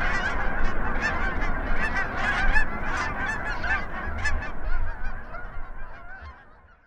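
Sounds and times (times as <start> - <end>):
Canada geese honking at takeoff: 0.0 - 6.8.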